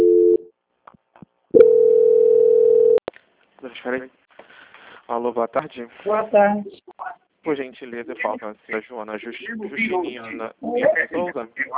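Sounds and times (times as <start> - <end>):
telephone call transfer tone: 1.6 - 3.0
speech: 3.8 - 4.2, 5.1 - 11.7.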